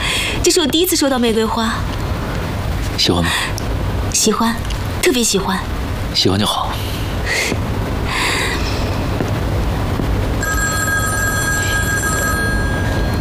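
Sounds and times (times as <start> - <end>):
loud steady broadband noise: 0.0 - 13.2
speech: 0.4 - 2.1, 3.0 - 6.6
telephone ringing with thin high electronic tones: 10.4 - 13.2.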